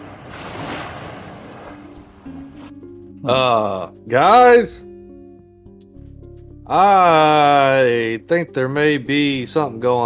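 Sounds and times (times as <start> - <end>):
waves lapping onto a shore: 0.0 - 2.7
speech: 3.2 - 4.8, 6.7 - 10.0.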